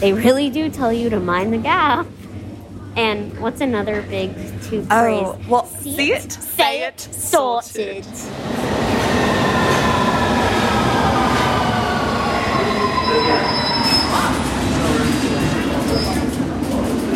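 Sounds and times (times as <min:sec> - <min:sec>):
speech: 0:00.0 - 0:02.2, 0:03.0 - 0:09.4
crowded underground train arriving at a station: 0:00.0 - 0:17.1
underground train wheels letting out high metallic squeals: 0:12.3 - 0:15.0, 0:15.6 - 0:16.3.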